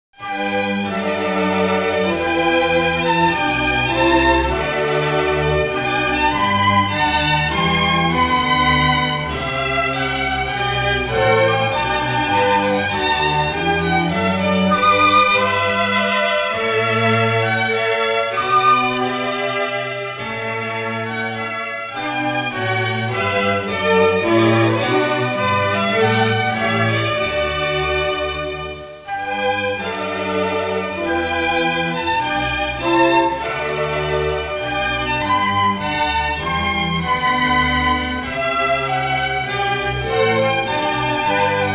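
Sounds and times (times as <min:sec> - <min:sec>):
baroque classical music: 0:00.2 - 0:41.7.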